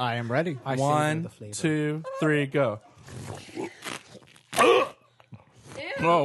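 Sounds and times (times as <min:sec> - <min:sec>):
speech: 0:00.0 - 0:04.8, 0:06.0 - 0:06.2
mouth and swallowing noises while drinking: 0:03.0 - 0:05.8.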